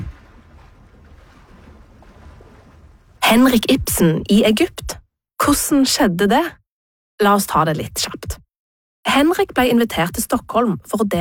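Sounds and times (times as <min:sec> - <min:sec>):
low rumble of wind: 0:00.0 - 0:04.0
waves lapping against a boat hull: 0:00.0 - 0:04.8
speech: 0:03.3 - 0:06.6, 0:07.2 - 0:08.2, 0:09.2 - 0:11.1.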